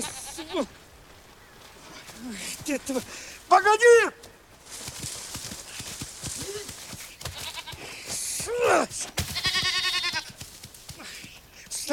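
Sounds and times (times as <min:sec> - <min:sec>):
goat bleating as it is caught by the horns: 0:00.0 - 0:00.7, 0:07.2 - 0:10.4
speech: 0:00.5 - 0:00.8, 0:02.2 - 0:04.2, 0:08.7 - 0:09.2.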